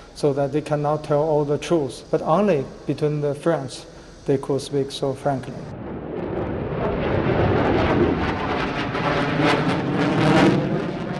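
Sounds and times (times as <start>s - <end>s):
speech: 0.2s - 5.8s
fighter planes roaring overhead at an airbase in Shandong dropping flares: 5.6s - 11.1s.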